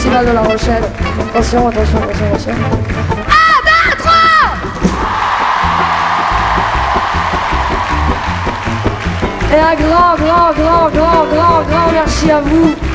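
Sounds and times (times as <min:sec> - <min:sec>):
speech: 0:00.2 - 0:03.1, 0:09.5 - 0:12.8
large festival crowd cheering and shouting in La Rochelle: 0:03.2 - 0:12.9.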